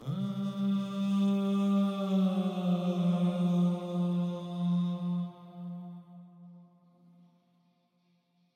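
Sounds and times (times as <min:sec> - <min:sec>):
backing vocals: 0:00.0 - 0:06.0.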